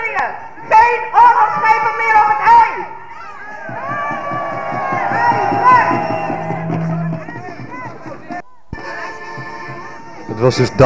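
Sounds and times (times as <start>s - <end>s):
demonstrators on boats at a harbour with voices and cheering: 0.4s - 10.8s
sustained horn-like tones: 3.6s - 8.1s
steady rumble of boat engines at a harbour: 3.7s - 8.3s
speech: 10.4s - 10.8s.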